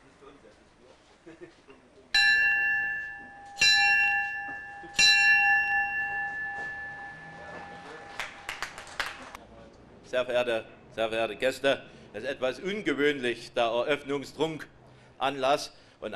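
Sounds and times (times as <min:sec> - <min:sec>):
bell struck with long sustained tone: 0:02.2 - 0:08.8
scattered applause: 0:07.8 - 0:09.4
speech: 0:10.1 - 0:16.1.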